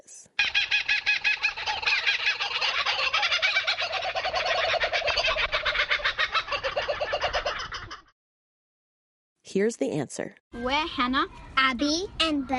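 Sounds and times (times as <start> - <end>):
kookaburra laughing call: 0.4 - 8.1
speech: 9.5 - 12.5.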